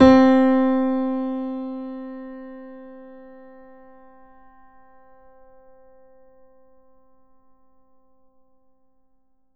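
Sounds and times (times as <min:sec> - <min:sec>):
grand piano note C3 played forte: 0:00.0 - 0:05.8.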